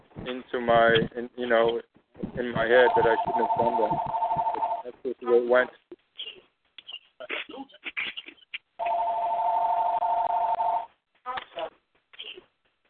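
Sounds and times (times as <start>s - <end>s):
speech: 0.3s - 4.2s, 5.2s - 5.8s
phone ringing with an electronic trill: 2.6s - 4.8s, 8.8s - 10.9s.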